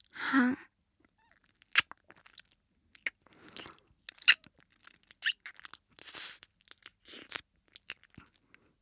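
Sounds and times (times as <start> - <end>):
wet mouth sounds of an ear being licked: 3.0 - 8.4.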